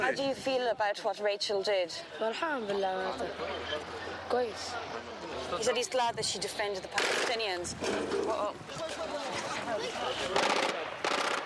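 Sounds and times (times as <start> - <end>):
speech: 0.1 - 9.2, 9.8 - 10.8
machine gun fire from an armored personnel carrier: 7.0 - 7.4, 10.4 - 11.4.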